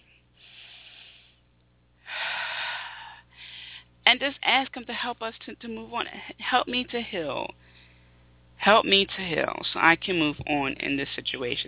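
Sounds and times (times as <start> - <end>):
deep breath in during a guided healing meditation: 0.4 - 1.4, 2.0 - 3.9
speech: 4.1 - 7.7, 8.6 - 11.6.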